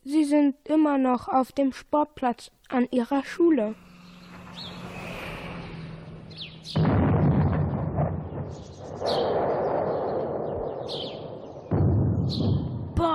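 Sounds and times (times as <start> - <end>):
speech: 0.2 - 3.8, 6.7 - 7.1, 9.0 - 9.5
birds chirping and tweeting: 3.1 - 12.9
explosions booming with rolling rumble: 5.6 - 13.1.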